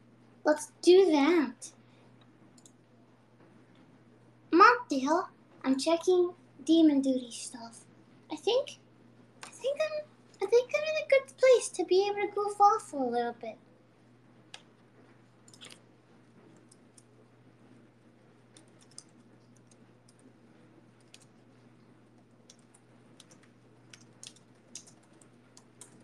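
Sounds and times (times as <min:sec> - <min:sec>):
speech: 0:00.4 - 0:01.8, 0:04.6 - 0:08.8, 0:09.6 - 0:13.7
computer keyboard typing: 0:02.6 - 0:02.8, 0:15.4 - 0:15.8, 0:16.4 - 0:17.2, 0:18.4 - 0:26.0.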